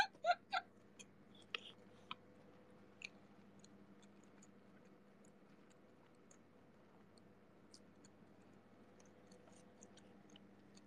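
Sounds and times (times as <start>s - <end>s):
person chewing while eating: 1.0s - 2.2s, 3.0s - 6.5s, 7.1s - 10.8s.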